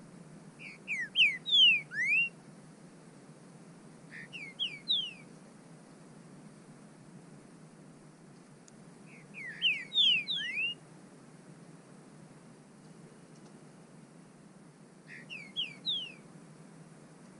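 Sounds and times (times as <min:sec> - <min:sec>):
low hiss: 0:00.0 - 0:17.3
bird whistling calls: 0:00.6 - 0:02.4, 0:04.1 - 0:05.3, 0:09.1 - 0:10.8, 0:15.1 - 0:16.2.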